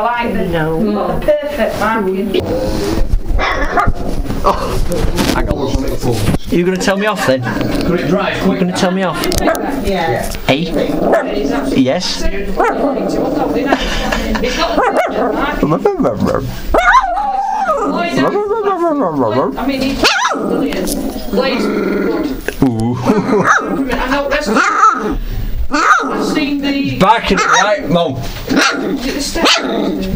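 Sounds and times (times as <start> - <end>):
speech: 0.0 - 16.9, 17.8 - 30.1
puppy barking: 3.4 - 4.0, 11.1 - 11.4, 12.6 - 13.1, 14.8 - 15.5, 16.7 - 18.0, 20.0 - 20.5, 23.4 - 23.7, 24.6 - 25.2, 25.8 - 26.2, 27.3 - 27.8, 28.5 - 29.8
laughter: 13.3 - 15.6, 22.7 - 24.7.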